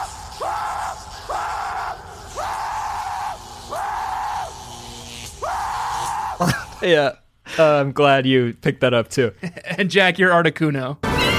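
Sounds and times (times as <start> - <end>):
person screaming loudly: 0.0 - 6.8
speech: 6.4 - 11.0.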